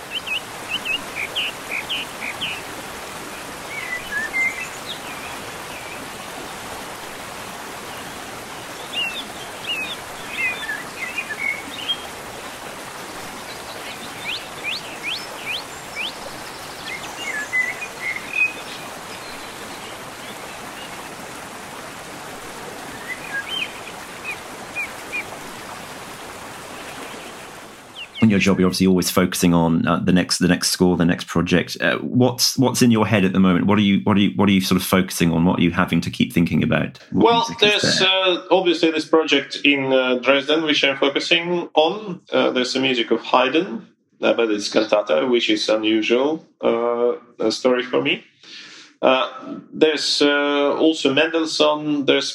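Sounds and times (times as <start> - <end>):
small birds chirping and trilling: 0.0 - 21.4, 22.7 - 28.7
rushing water: 0.0 - 32.0, 32.6 - 38.2
speech: 28.3 - 52.3.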